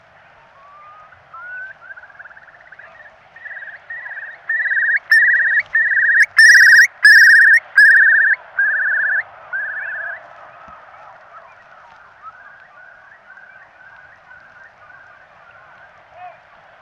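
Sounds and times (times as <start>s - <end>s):
Eurasian curlew: 0.8s - 10.2s.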